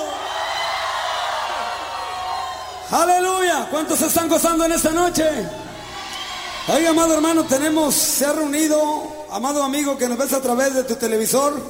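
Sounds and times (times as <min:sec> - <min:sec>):
large crowd at a religious gathering in a theater in Mexico shouting joyfully: 0:00.0 - 0:03.8, 0:04.5 - 0:09.3
speech: 0:02.9 - 0:05.6, 0:06.6 - 0:11.6.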